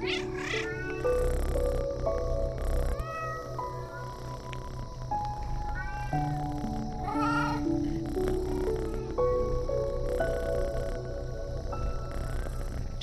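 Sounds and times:
several cats meowing while playing: 0:00.0 - 0:01.6, 0:02.9 - 0:10.9
steady tonal background: 0:00.0 - 0:13.0.

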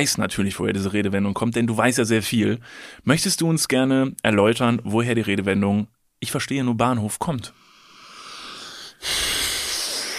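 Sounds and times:
speech: 0:00.0 - 0:07.6
long heavy snorting breath: 0:07.7 - 0:10.1.

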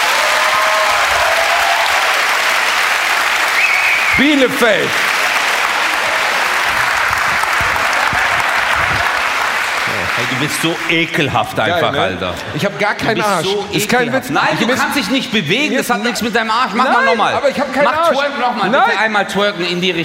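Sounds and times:
people cheering: 0:00.0 - 0:11.4
live crowd of about 1000 people clapping their hands: 0:00.0 - 0:11.7
speech: 0:04.2 - 0:05.1, 0:10.2 - 0:20.0.

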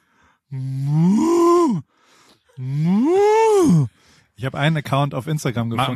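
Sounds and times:
speech: 0:00.5 - 0:00.9, 0:04.4 - 0:05.9
person imitating cow mooing: 0:00.5 - 0:01.8, 0:02.6 - 0:03.9.

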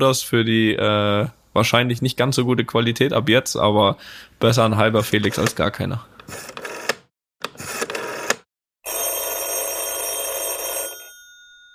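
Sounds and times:
speech: 0:00.0 - 0:06.5
mobile phone call ringing tone: 0:07.6 - 0:11.7.

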